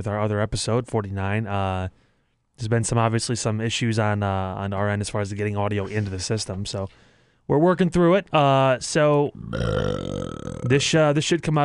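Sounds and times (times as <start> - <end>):
speech: 0.0 - 2.0, 2.6 - 11.6
loud drawn-out throaty burp: 9.4 - 10.9.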